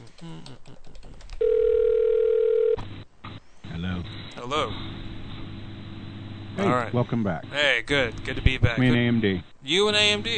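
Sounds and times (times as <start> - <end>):
telephone dial tone while reconnecting a call: 1.4 - 2.8
speech: 4.5 - 4.9, 6.6 - 10.3.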